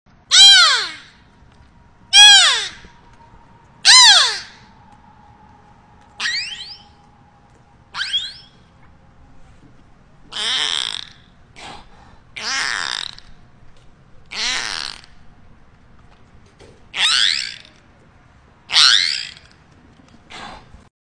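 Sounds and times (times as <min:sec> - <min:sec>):
beluga calls: 0:00.3 - 0:01.2, 0:02.1 - 0:02.9, 0:03.8 - 0:04.7, 0:06.2 - 0:07.0, 0:07.9 - 0:08.6, 0:10.3 - 0:13.4, 0:14.3 - 0:15.2.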